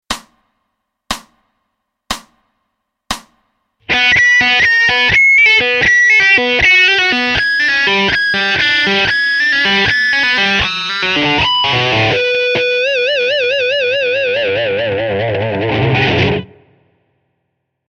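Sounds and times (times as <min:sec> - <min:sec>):
slow open string pull-off lick: 0:03.8 - 0:16.9.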